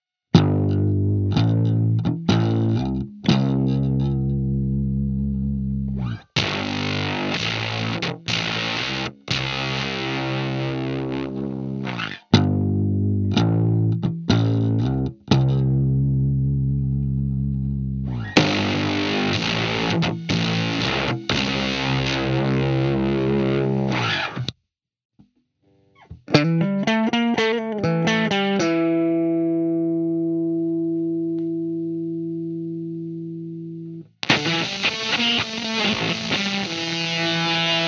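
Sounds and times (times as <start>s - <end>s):
octave bass effect pedal on bass guitar: 0.3s - 24.5s, 26.1s - 37.8s.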